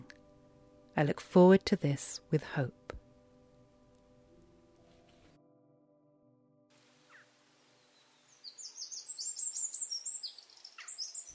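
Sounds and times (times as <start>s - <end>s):
speech: 1.0s - 2.8s
wren singing: 7.1s - 11.3s.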